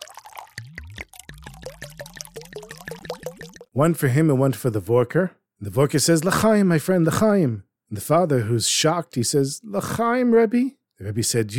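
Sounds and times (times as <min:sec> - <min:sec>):
wine glugging from a bottle into a glass: 0:00.0 - 0:03.8
speech: 0:03.8 - 0:11.5.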